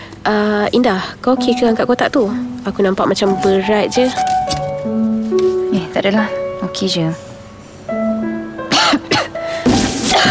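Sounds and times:
soft sustained musical tone: 0:00.0 - 0:09.6
speech: 0:00.2 - 0:04.6, 0:06.0 - 0:07.3
woman coughing up blood: 0:08.7 - 0:09.4, 0:10.0 - 0:10.2.

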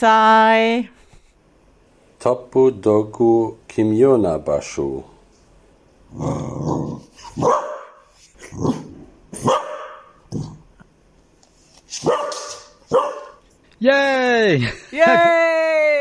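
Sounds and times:
speech: 0:00.0 - 0:01.0, 0:02.2 - 0:05.1, 0:06.1 - 0:07.8, 0:08.5 - 0:09.6, 0:12.0 - 0:12.3, 0:13.8 - 0:15.5
dog barking: 0:07.3 - 0:08.1, 0:09.4 - 0:10.2, 0:12.0 - 0:13.4.

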